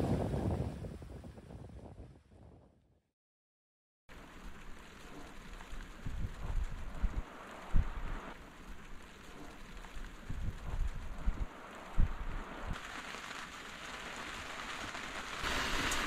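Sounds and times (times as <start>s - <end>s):
wind buffeting the microphone: 0.0s - 2.7s, 5.9s - 8.3s, 10.0s - 12.8s
heavy rain pouring: 4.1s - 16.0s.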